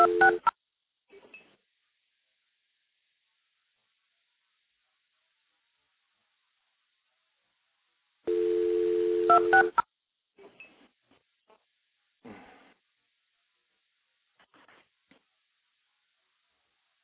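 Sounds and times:
multi-frequency tones dialing into stacked telephone trunks: 0.0 - 0.5, 8.3 - 9.8.

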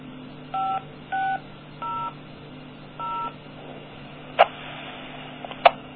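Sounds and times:
faint steady hum: 0.0 - 5.9
DTMF dialing tones establishing a radio link: 0.5 - 2.2, 3.0 - 3.3.

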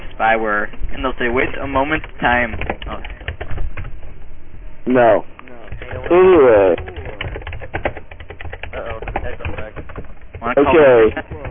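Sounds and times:
speech: 0.2 - 3.2, 4.8 - 6.9, 10.4 - 11.4
typing on a keyboard: 1.9 - 3.9, 5.7 - 11.4.

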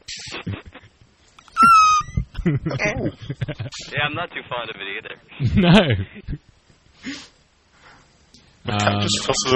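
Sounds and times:
person making a piercing high-pitched vocal squeal: 1.6 - 2.2
speech: 2.4 - 6.3, 8.7 - 9.5.

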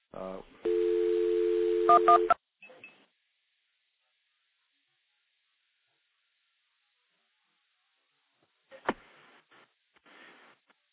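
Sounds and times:
telephone dialing tones routed through a stack of phone trunks: 0.7 - 2.4.

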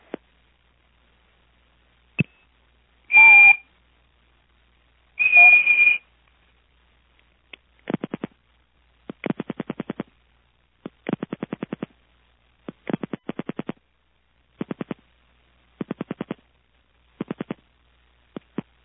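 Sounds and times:
short steady whistle tones over a telephone line: 3.1 - 3.6, 5.2 - 6.0
sharp isolated clicks and bursts of clicking: 9.1 - 10.1, 10.8 - 12.0, 12.6 - 13.8, 14.6 - 15.0, 15.8 - 16.4, 17.2 - 17.6.

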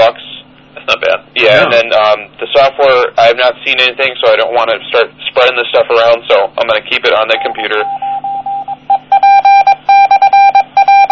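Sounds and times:
faint hum: 0.0 - 11.1
speech: 1.4 - 8.0
radio repeater beeping Morse code call sign: 7.4 - 11.1.

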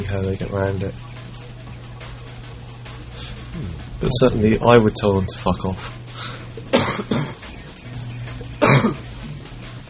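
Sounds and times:
speech: 0.0 - 1.4, 3.6 - 7.6, 8.8 - 9.0
person coughing: 6.7 - 7.4, 8.6 - 9.0.

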